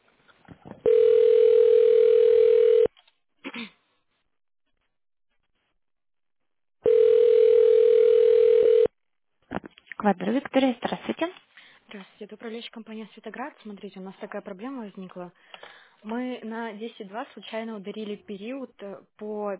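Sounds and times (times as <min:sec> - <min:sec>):
telephone tone beeps while a call is transferred: 0:00.8 - 0:02.9, 0:06.9 - 0:08.9
speech: 0:10.1 - 0:19.5.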